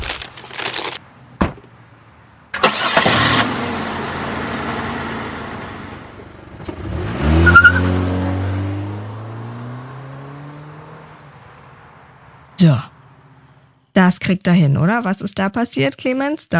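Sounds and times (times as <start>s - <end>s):
car engine cranking, idling and revving: 2.5s - 13.5s
speech: 12.6s - 12.9s, 14.0s - 16.5s.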